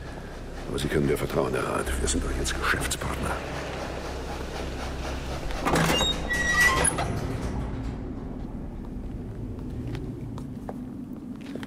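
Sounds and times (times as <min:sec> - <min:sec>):
train rumbling: 0:00.0 - 0:11.6
speech: 0:00.7 - 0:03.8
high metallic squeals of train brakes or wheels: 0:05.2 - 0:07.8.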